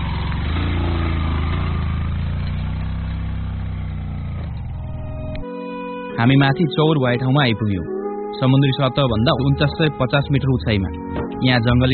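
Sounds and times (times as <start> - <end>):
motorcycle engine straining uphill: 0.0 - 5.4
speech: 6.2 - 11.9.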